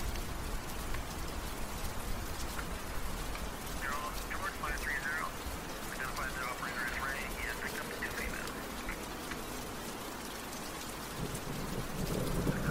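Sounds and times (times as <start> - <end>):
low city rumble: 0.0 - 12.6
steady dense rain: 0.0 - 12.6
police radio chatter: 3.8 - 9.1.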